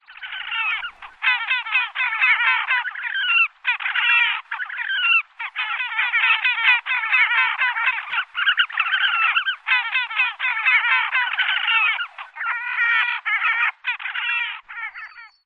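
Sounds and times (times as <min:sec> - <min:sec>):
courting group of Horned Grebes calling: 0:00.0 - 0:15.4.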